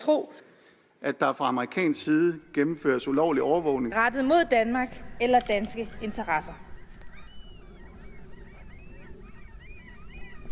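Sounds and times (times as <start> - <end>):
speech: 0.0 - 6.7
flock of gulls squawking over food: 2.6 - 10.5.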